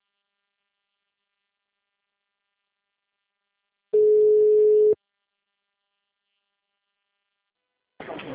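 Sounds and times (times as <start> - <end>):
ringback tone beeps while placing a phone call: 3.9 - 4.9.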